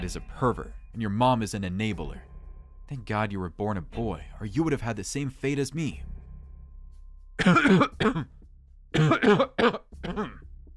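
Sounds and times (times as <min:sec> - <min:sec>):
speech: 0:00.0 - 0:02.3, 0:02.9 - 0:06.1, 0:07.4 - 0:10.4
person coughing uncontrollably: 0:07.4 - 0:08.3, 0:09.0 - 0:10.4
raspy throat clearing: 0:07.4 - 0:08.3, 0:09.0 - 0:10.4.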